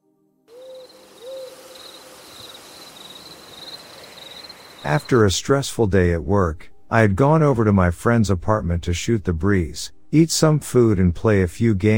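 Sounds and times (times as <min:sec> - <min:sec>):
owl hooting: 0:00.5 - 0:05.1
high-pitched insect trill: 0:00.5 - 0:05.3
speech: 0:04.8 - 0:11.9.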